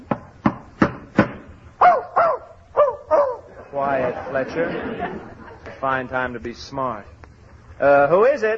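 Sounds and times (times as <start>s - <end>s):
dog barking in a hotel: 1.8s - 3.5s
laughter: 3.4s - 6.1s
speech: 3.8s - 7.2s, 7.8s - 8.5s.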